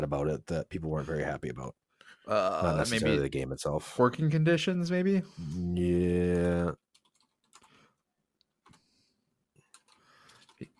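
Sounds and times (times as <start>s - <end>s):
speech: 0.0s - 6.8s
typing on a computer keyboard: 6.8s - 7.8s, 9.6s - 10.7s.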